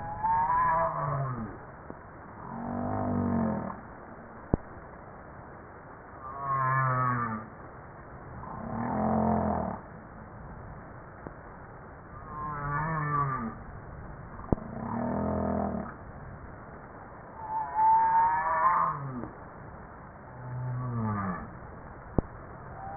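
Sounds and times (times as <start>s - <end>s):
humpback whale harmonic moans: 0.0s - 1.6s, 2.4s - 3.9s, 6.2s - 7.5s, 8.4s - 9.8s, 12.2s - 13.6s, 14.5s - 16.0s, 17.4s - 19.3s, 20.4s - 21.6s.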